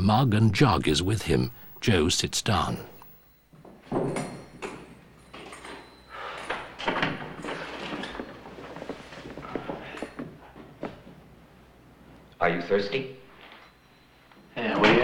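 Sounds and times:
speech: 0.0 - 2.9, 12.5 - 13.2
door creaking and bumping open in a small room: 3.9 - 10.2
shuffling: 5.4 - 12.3.

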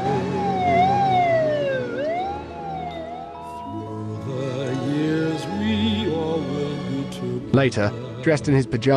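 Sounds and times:
police car siren wailing: 0.0 - 6.4
sustained musical tones: 0.0 - 8.8
speech: 7.6 - 8.9.

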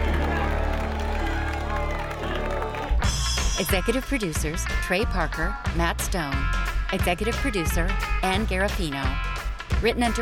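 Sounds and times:
crowd murmur: 0.0 - 3.0
crowd cheering: 0.0 - 3.4
speech: 3.6 - 10.2.

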